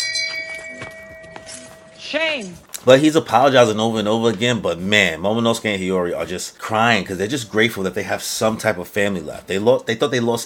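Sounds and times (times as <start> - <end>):
church bell tolling: 0.0 - 2.1
speech: 2.1 - 10.4.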